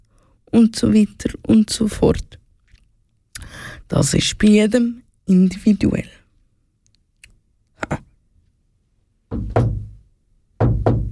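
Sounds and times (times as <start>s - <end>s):
speech: 0.5s - 2.4s, 3.5s - 6.2s
knocking on a door: 9.3s - 10.0s, 10.6s - 11.1s.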